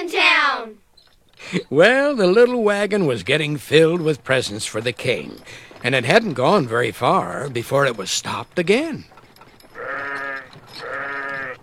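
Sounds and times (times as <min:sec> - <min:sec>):
speech: 0:01.5 - 0:09.2
sheep bleating: 0:09.8 - 0:11.6.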